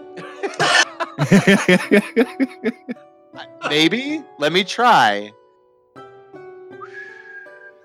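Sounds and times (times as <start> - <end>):
laughter: 0.2 - 3.0
speech: 1.2 - 5.4
feeble breathy human whistle: 6.7 - 7.8.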